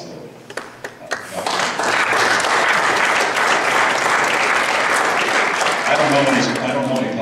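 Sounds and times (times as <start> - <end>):
crowd applauding: 0.6 - 7.0.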